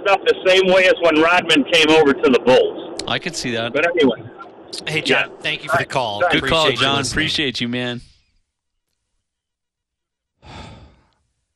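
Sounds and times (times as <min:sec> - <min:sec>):
speech: 0:00.1 - 0:08.1
deep forceful exhale in a breathing exercise: 0:10.4 - 0:11.2.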